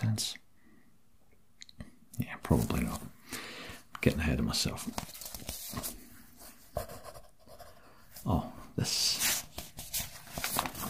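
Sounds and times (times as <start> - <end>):
speech: 0.0 - 0.4, 2.5 - 5.2, 8.2 - 9.2
paper crinkling and rustling in fingers: 4.8 - 7.0, 9.0 - 10.8.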